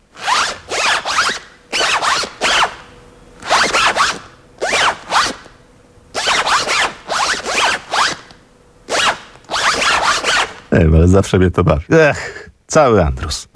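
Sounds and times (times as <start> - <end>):
zipper on clothing being zipped: 0.2 - 2.8, 3.4 - 5.4, 6.2 - 8.3, 8.9 - 10.6
speech: 10.8 - 13.4.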